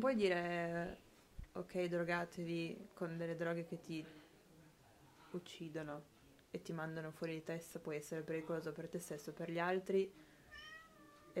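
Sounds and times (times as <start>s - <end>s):
speech: 0.0s - 4.2s, 5.3s - 10.7s
cat meowing: 10.5s - 11.3s.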